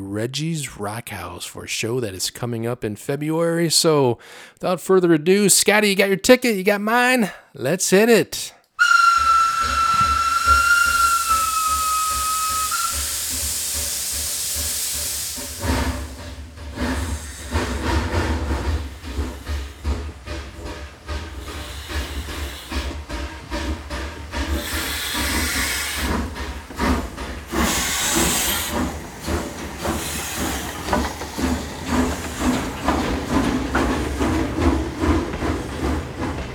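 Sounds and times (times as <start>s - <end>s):
speech: 0.1s - 9.0s
steam train whistle: 8.8s - 13.8s
heavy rushing steam hiss of a locomotive: 8.8s - 36.3s
rhythmic chuffing rumble of moving steam locomotive: 8.8s - 36.5s.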